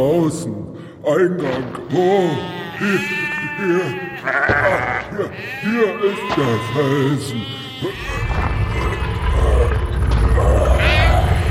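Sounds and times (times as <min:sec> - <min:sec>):
speech: 0:00.0 - 0:08.6
sheep bleating: 0:01.9 - 0:09.6, 0:10.8 - 0:11.4.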